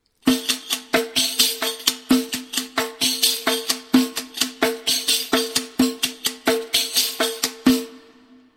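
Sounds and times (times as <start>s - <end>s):
riq tambourine: 0.2s - 8.3s.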